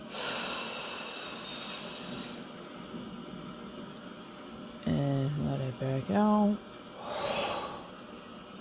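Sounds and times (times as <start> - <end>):
slow deep breath in during a guided relaxation exercise: 0.1 - 2.5, 7.0 - 8.0
speech: 5.8 - 6.7.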